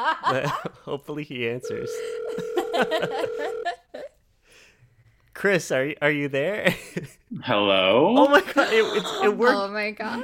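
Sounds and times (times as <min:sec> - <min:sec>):
laughter: 0:00.0 - 0:00.9, 0:02.4 - 0:04.2, 0:06.6 - 0:07.3, 0:08.3 - 0:09.5
speech: 0:00.0 - 0:03.8, 0:05.4 - 0:10.2
outgoing phone call electronic ringback tone: 0:01.6 - 0:03.8.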